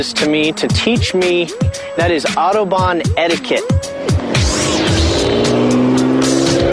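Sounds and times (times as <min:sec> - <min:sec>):
speech: 0:00.0 - 0:04.6
Ferrari 599 sports car engine roaring on an unrestricted stretch of Autobahn: 0:03.8 - 0:06.7.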